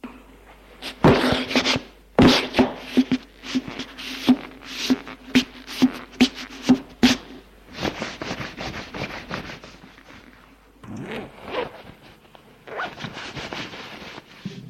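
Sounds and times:
clothes rustling as someone undresses: 0.6 - 14.6
zipper pulls: 10.2 - 14.2.

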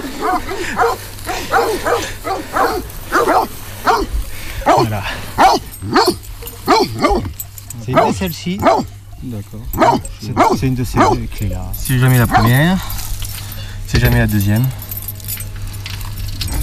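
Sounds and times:
Pyrenean mountain dog guard dog barking: 0.0 - 9.0, 9.7 - 11.4, 12.0 - 12.9
faint low hum: 0.0 - 16.6
speech: 0.4 - 4.0, 4.8 - 6.2, 6.8 - 13.0, 13.9 - 14.8.

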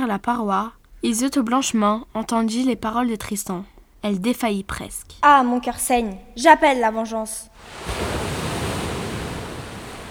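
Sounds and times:
speech: 0.0 - 8.0
sea waves: 7.4 - 10.0
blowing wind: 7.5 - 10.0.

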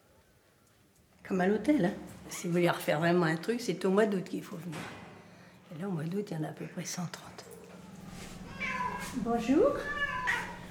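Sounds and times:
speech: 1.2 - 5.0, 5.7 - 7.5, 9.2 - 10.0
cat meowing with drawn-out rising and falling cry: 8.4 - 10.6.

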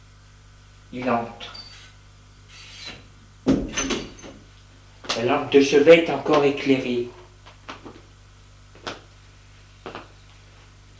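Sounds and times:
speech: 0.9 - 1.6, 5.2 - 7.2
bedroom door creaking open: 1.4 - 4.4.

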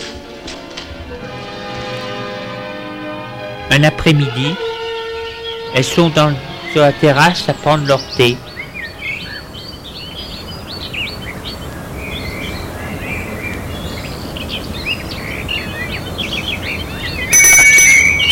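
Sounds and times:
birdsong: 0.0 - 18.3
speech: 3.7 - 4.6, 5.7 - 8.4
bell ringing at the garden gate: 17.3 - 18.3.

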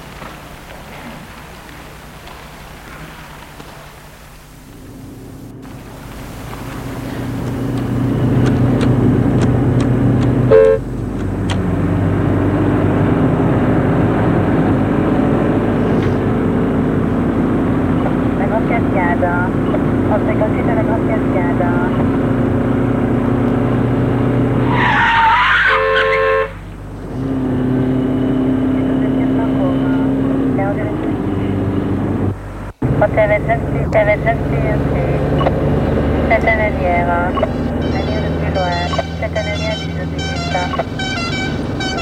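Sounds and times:
taxi engine humming while driving through traffic: 0.0 - 42.0
car horn honking: 10.4 - 10.9, 24.9 - 26.7, 37.3 - 42.0.

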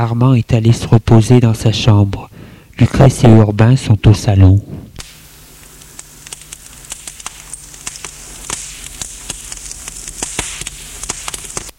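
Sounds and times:
speech: 0.0 - 4.8
fireplace fire crackling and popping: 4.8 - 11.7.

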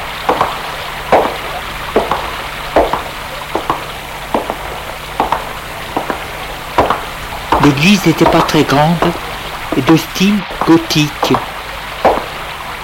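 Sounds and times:
steady rain hissing outside heard from indoors: 0.0 - 12.8
soft taps and drips: 0.2 - 12.8
speech: 7.6 - 11.5.

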